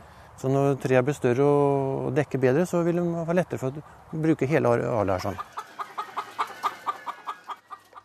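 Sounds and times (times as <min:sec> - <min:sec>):
speech: 0:00.4 - 0:05.6
organic laying hens clucking outdoors among young trees in Skjeberg Norway: 0:03.6 - 0:08.0.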